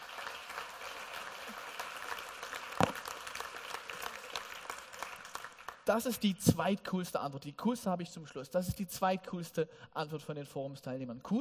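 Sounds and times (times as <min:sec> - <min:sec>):
crowd applause: 0:00.0 - 0:05.9
speech: 0:05.9 - 0:11.3.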